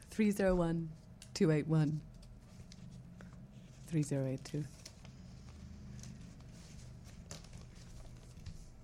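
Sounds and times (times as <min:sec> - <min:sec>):
low hum: 0:00.0 - 0:08.8
speech: 0:00.2 - 0:02.1, 0:03.9 - 0:04.8
paper crinkling while being folded around a book: 0:02.1 - 0:08.8.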